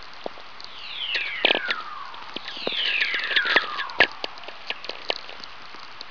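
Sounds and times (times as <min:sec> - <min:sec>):
VLF radio whistler: 0:00.6 - 0:05.4.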